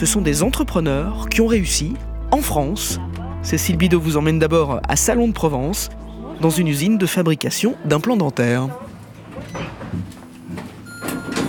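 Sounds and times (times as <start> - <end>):
speech: 0.0 - 10.0
elevator doors sliding open: 8.7 - 11.4.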